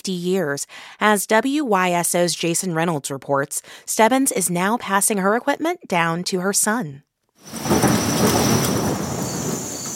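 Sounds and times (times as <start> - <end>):
speech: 0.0 - 8.5
deep rolling thunder: 7.4 - 9.9
heavy rain: 7.4 - 9.9.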